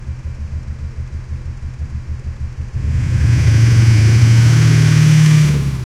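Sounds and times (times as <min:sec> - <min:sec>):
car engine revving violently: 0:02.8 - 0:05.9.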